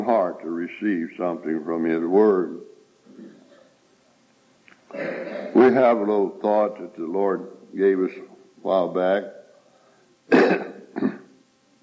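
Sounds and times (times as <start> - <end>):
speech: 0.0 - 3.3, 4.9 - 9.4
harsh coughing and throat clearing: 4.9 - 5.7, 10.3 - 11.4.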